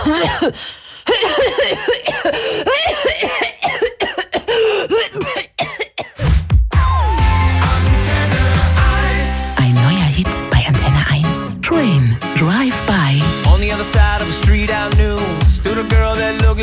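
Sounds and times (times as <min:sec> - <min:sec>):
person coughing: 0:00.0 - 0:06.2
music: 0:06.2 - 0:16.6
voices: 0:09.0 - 0:13.4.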